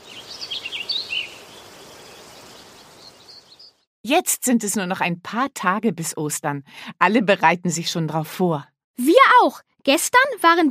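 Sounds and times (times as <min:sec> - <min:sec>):
birds chirping in spring: 0:00.0 - 0:03.9
speech: 0:04.1 - 0:10.7.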